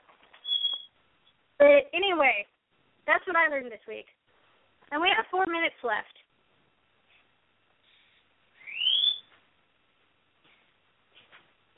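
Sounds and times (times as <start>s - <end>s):
pet bird whistling and chirping: 0.4s - 1.0s, 8.6s - 9.3s
speech: 1.6s - 2.5s, 3.1s - 4.2s, 4.9s - 6.2s.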